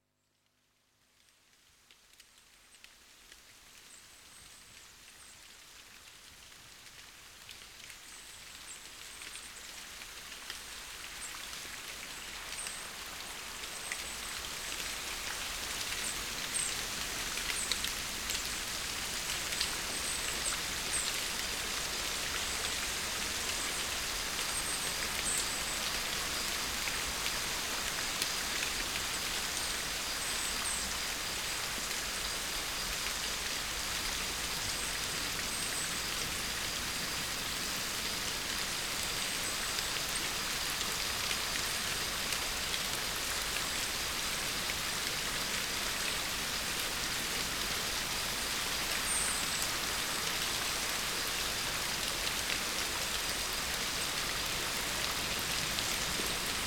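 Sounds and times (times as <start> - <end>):
raindrops in a forest: 0.0 - 56.6.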